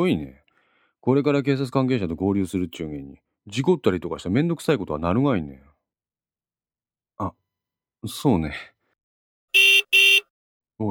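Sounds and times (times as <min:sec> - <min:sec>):
speech: 0:00.0 - 0:00.4, 0:01.0 - 0:05.7, 0:07.2 - 0:07.4, 0:08.0 - 0:08.7, 0:10.8 - 0:10.9
car horn honking: 0:09.6 - 0:10.3.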